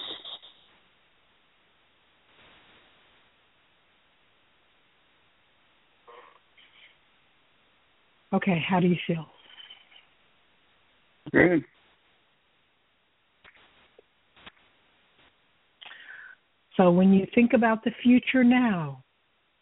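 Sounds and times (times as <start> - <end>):
speech: 8.3 - 9.4, 11.3 - 11.8, 16.8 - 19.0
slow deep breathing with rough airflow: 15.8 - 16.5.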